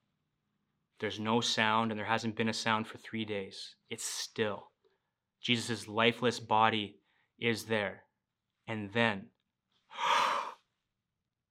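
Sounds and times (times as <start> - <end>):
speech: 1.0 - 4.7, 5.4 - 8.0, 8.7 - 10.2
man's sharp first breath: 9.9 - 10.6.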